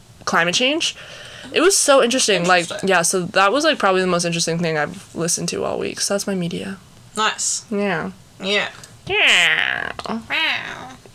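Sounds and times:
speech: 0:00.3 - 0:11.0
person imitating a video game villager: 0:08.4 - 0:11.1.

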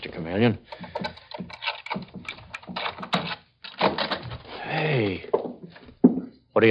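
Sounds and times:
speech: 0:00.1 - 0:01.1, 0:06.6 - 0:06.7
keys jingling and scraping in a locked door's lock: 0:00.8 - 0:04.4.

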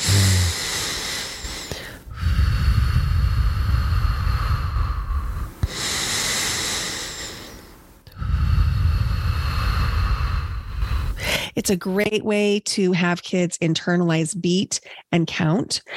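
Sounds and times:
slow deliberate breathing with long exhales to ease anxiety: 0:00.0 - 0:11.5
speech: 0:11.6 - 0:15.9.

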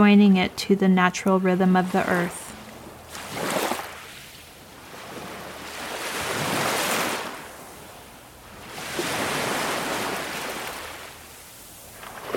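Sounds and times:
speech: 0:00.0 - 0:02.4
ocean waves: 0:00.0 - 0:12.3.

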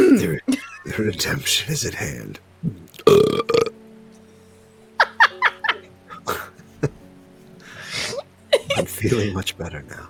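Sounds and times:
speech: 0:01.0 - 0:02.5, 0:09.0 - 0:10.0
loud burp: 0:02.6 - 0:03.8
laughter: 0:05.0 - 0:07.2, 0:07.9 - 0:09.4.

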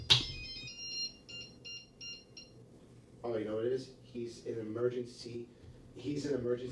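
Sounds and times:
mobile phone ringtone with bright electronic beeps: 0:00.0 - 0:02.6
low hum: 0:00.0 - 0:06.6
person talking: 0:03.2 - 0:06.6.

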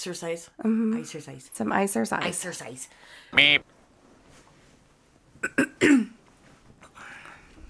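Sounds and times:
speech: 0:00.0 - 0:03.7, 0:05.4 - 0:06.2
person clearing mucus from throat: 0:05.4 - 0:06.2.

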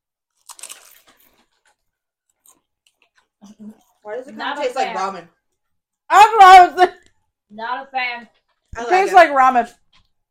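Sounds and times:
wagyu beef steak flavored potato chips being bitten and chewed: 0:00.3 - 0:03.3
speech: 0:03.6 - 0:05.4, 0:06.1 - 0:09.8.

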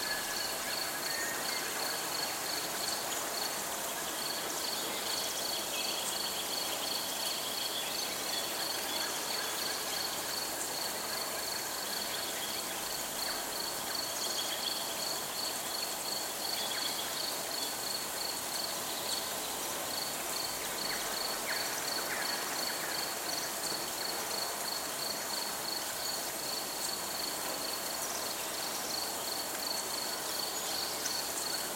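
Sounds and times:
crickets chirping: 0:00.0 - 0:31.7
rain or running water hiss: 0:00.0 - 0:31.7.

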